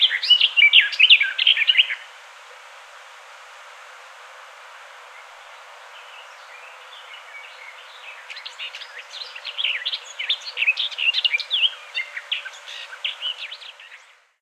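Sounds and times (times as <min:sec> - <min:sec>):
garden warbler Sylvia borin song with warbled phrases and babbling runs: 0:00.0 - 0:02.1, 0:05.0 - 0:14.4.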